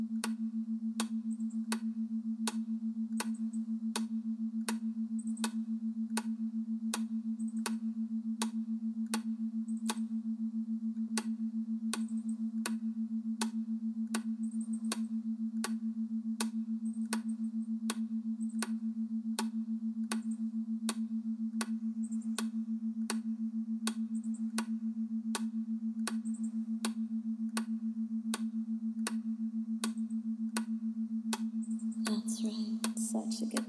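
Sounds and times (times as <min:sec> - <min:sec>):
constant low droning hum: 0:00.0 - 0:33.6
clock ticking: 0:31.3 - 0:33.6.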